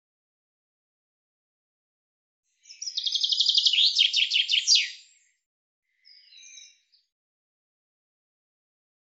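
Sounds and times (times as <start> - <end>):
common chaffinch song: 2.5 - 7.1
faint soft chirp: 2.6 - 7.1.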